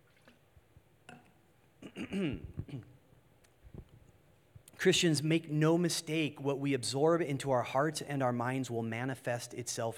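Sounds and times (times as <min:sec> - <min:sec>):
person sipping water: 0:00.0 - 0:04.0
speech: 0:02.1 - 0:02.9, 0:04.8 - 0:09.9.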